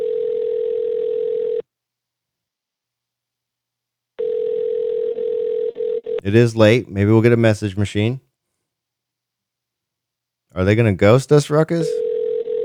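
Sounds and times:
telephone dial tone while calling: 0:00.0 - 0:01.6, 0:04.2 - 0:06.3, 0:12.0 - 0:12.6
speech: 0:06.2 - 0:08.3, 0:10.6 - 0:12.0.

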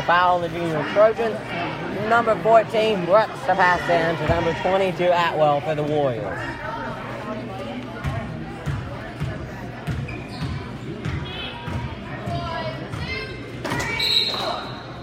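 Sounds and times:
crowd noise and voices at a youth basketball game: 0:00.0 - 0:15.0
speech: 0:00.1 - 0:06.7
basketball dribbled on a court during a youth game: 0:08.0 - 0:13.2.

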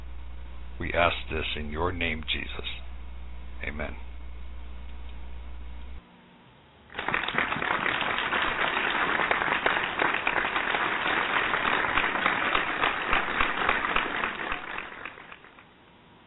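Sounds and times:
brief low hum: 0:00.0 - 0:06.8
speech: 0:00.8 - 0:02.8, 0:03.6 - 0:04.1
large crowd applause: 0:06.9 - 0:15.6.

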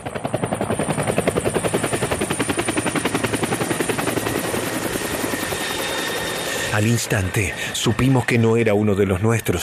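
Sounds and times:
arriving helicopter rotor thumping: 0:00.0 - 0:09.2
helicopter whining engine hum: 0:02.0 - 0:09.6
speech: 0:06.8 - 0:09.6.

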